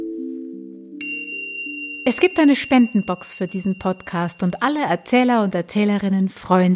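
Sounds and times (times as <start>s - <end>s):
short podcast jingle of smooth sustained tones: 0.0s - 4.6s
bright bell-like chime: 1.0s - 5.2s
speech: 2.0s - 6.7s.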